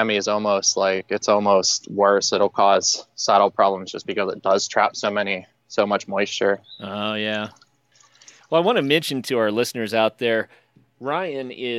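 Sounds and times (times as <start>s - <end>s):
speech: 0.0s - 7.6s, 8.5s - 11.7s
water dripping outdoors: 6.7s - 8.7s.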